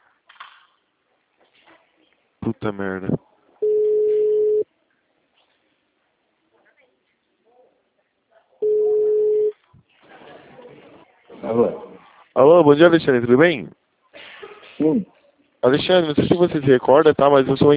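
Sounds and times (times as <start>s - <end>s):
speech: 2.5s - 3.2s, 12.4s - 13.8s, 14.8s - 17.7s
telephone line beeps after dialing a call: 3.6s - 4.6s, 8.6s - 9.5s.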